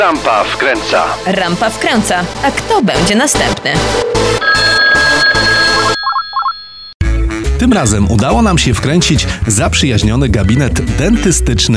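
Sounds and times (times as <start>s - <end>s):
speech: 0.0s - 5.1s, 7.6s - 11.7s
telephone ringing: 4.2s - 7.0s.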